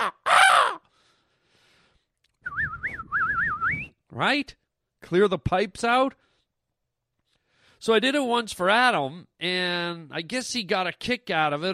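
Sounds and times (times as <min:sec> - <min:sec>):
person mimicking a bird with a loud harsh caw: 0:00.0 - 0:00.9
person mimicking a bird with a warbling wavering whistle: 0:02.4 - 0:03.9
speech: 0:04.2 - 0:06.2, 0:07.8 - 0:11.7.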